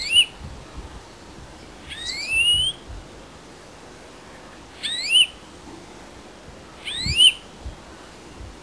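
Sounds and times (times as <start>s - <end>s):
European greenfinch Chloris chloris rising slightly wheezy whistled call: 0.0s - 0.3s, 1.9s - 2.8s, 4.8s - 5.4s, 6.8s - 7.4s.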